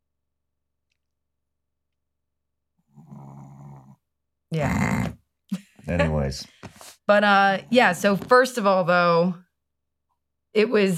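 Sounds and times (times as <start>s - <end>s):
dog snoring: 2.8s - 4.0s
speech: 4.5s - 5.1s, 5.9s - 9.4s, 10.5s - 10.9s.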